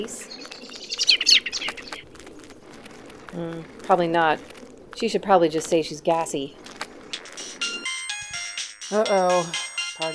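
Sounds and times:
speech: 0:00.0 - 0:00.4, 0:03.3 - 0:06.6, 0:08.9 - 0:10.1
bright electronic phone ringtone of an incoming call: 0:07.2 - 0:10.1.

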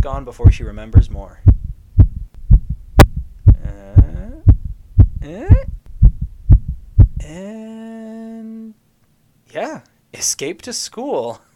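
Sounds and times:
speech: 0:00.0 - 0:01.5, 0:05.2 - 0:05.7, 0:07.2 - 0:08.0, 0:09.5 - 0:11.5
video game heartbeat sound effect for a dialogue heartbeat bar: 0:00.0 - 0:07.3.

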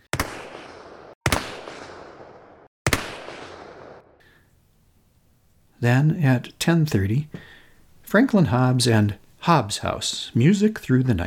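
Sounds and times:
loud gunshots with roaring echo: 0:00.0 - 0:04.2
speech: 0:05.8 - 0:07.5, 0:08.1 - 0:11.2.

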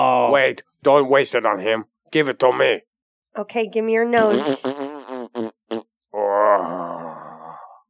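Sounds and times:
speech: 0:00.0 - 0:05.5
person imitating a fart: 0:04.2 - 0:07.2.

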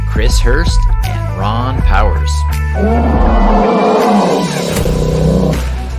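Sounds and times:
speech: 0:00.2 - 0:04.5
bear roar: 0:02.8 - 0:05.8.

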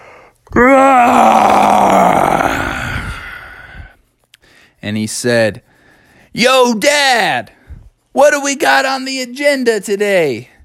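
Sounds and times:
person voicing an exaggerated yawn: 0:00.5 - 0:03.9
speech: 0:04.9 - 0:05.7, 0:06.3 - 0:07.6, 0:08.2 - 0:10.5.

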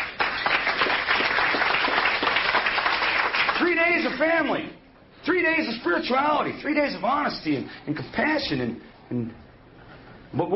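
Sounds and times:
crowd applauding with many hands clapping: 0:00.0 - 0:04.3
speech: 0:04.0 - 0:09.4, 0:10.3 - 0:10.5.

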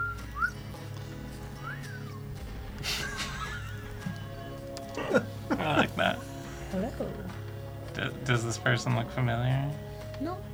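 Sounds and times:
old man whistling gently in a video game: 0:00.0 - 0:00.9, 0:01.5 - 0:02.4
faint steady background: 0:00.0 - 0:10.5
laughter: 0:01.6 - 0:07.4
speech: 0:08.3 - 0:10.5.

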